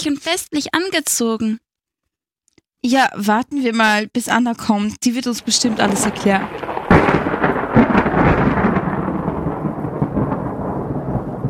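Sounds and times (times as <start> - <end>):
speech: 0.0 - 1.7, 2.8 - 7.1
faint patter of rain: 5.4 - 11.4
rolling thunder from an approaching thunderstorm: 5.4 - 11.4.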